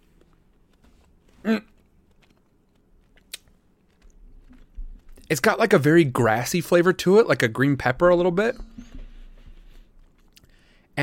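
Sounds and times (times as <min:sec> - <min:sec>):
soft chewing of a jelly bean: 0:00.0 - 0:05.4, 0:08.6 - 0:10.9
crunchy bite into a jelly bean: 0:01.3 - 0:05.3
speech: 0:01.4 - 0:01.7, 0:05.3 - 0:08.7.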